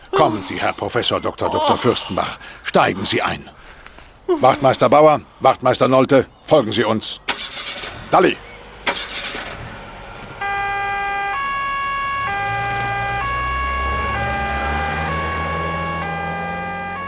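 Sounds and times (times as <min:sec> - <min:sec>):
speech: 0:00.1 - 0:07.5, 0:08.1 - 0:08.5
police sirens wailing in two-tone alternation during a chase: 0:06.5 - 0:17.0
engines starting and cars pulling away: 0:06.8 - 0:17.0.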